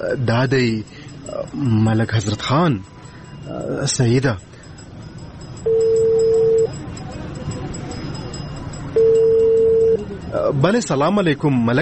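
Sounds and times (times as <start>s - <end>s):
speech: 0.0s - 4.5s, 10.4s - 11.7s
low noise: 0.0s - 11.7s
ringing tones of an outgoing phone call: 5.6s - 6.9s, 8.2s - 10.2s.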